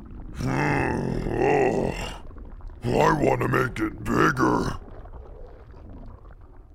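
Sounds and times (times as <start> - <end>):
loud deep belch: 0.4 - 2.2
speech: 2.8 - 4.8.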